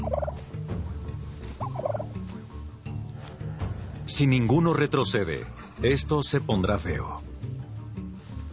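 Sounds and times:
wild turkey males gobbling: 0.0s - 2.2s
chorus of birds calling: 0.0s - 4.1s
speech: 4.1s - 7.3s.

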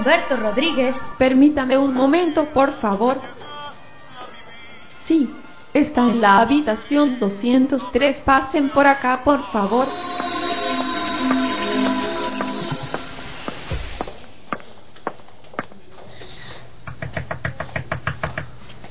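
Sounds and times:
speech: 0.0s - 3.4s, 5.1s - 10.3s
footsteps: 9.4s - 15.7s.

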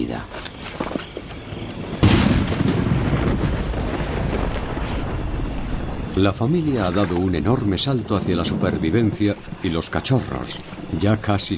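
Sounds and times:
speech: 0.0s - 0.5s, 6.2s - 11.5s
deep rumble of thunder: 1.4s - 11.5s
heavy rain: 1.7s - 9.7s.

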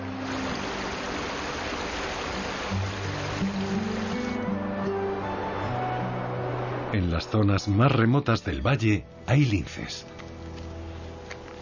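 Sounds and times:
meltwater stream swollen by thawing snow rushing in a valley: 0.0s - 7.0s
speech: 6.9s - 10.2s.

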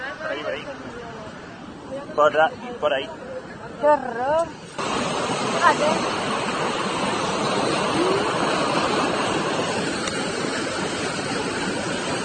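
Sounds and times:
speech: 2.1s - 6.2s
rushing waterfall: 4.7s - 12.2s.

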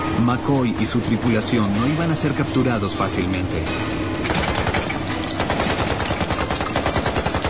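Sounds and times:
speech: 0.2s - 4.0s
rapid gunfire from Coast Guard boat: 4.3s - 7.4s.

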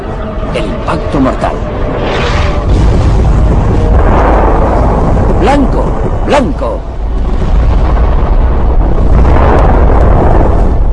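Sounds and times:
speech: 0.6s - 2.2s, 5.4s - 6.9s
explosion of a warship's ammunition magazine: 1.7s - 10.9s
crackling debris: 2.6s - 10.9s.

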